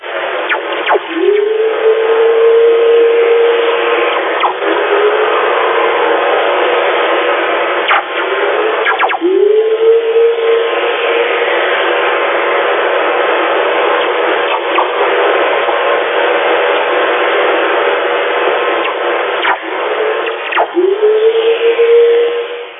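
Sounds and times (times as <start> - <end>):
VLF radio static hiss: 0.0 - 22.7
descending electron whistlers on VLF radio: 0.5 - 6.4, 7.9 - 12.2, 18.8 - 22.7.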